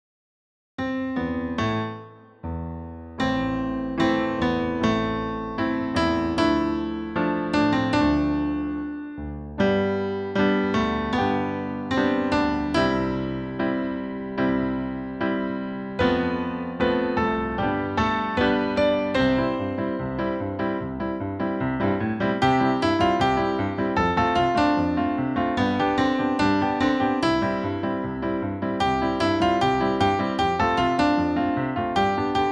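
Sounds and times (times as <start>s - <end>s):
solo melody: 1.2s - 32.5s.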